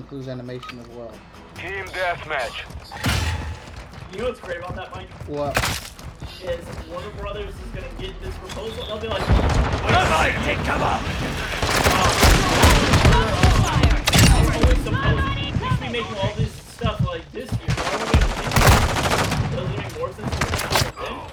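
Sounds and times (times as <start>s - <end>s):
speech: 0.0s - 3.4s, 4.1s - 13.8s, 14.8s - 16.5s
sustained machine gun fire: 9.2s - 16.2s, 17.7s - 20.9s.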